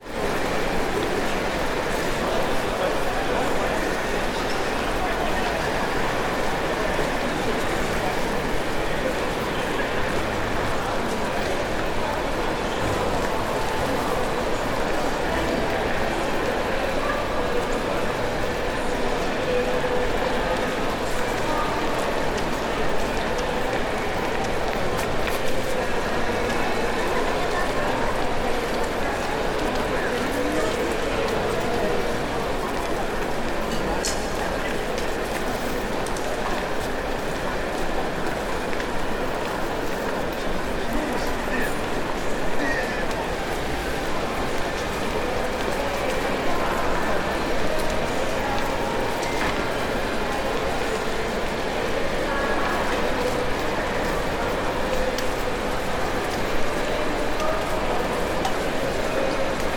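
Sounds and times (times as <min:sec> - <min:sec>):
event hall ambience: 0:00.0 - 0:59.7.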